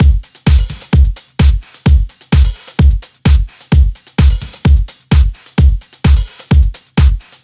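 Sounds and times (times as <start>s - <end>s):
129 BPM hip house drum kit beat: 0.0s - 7.4s.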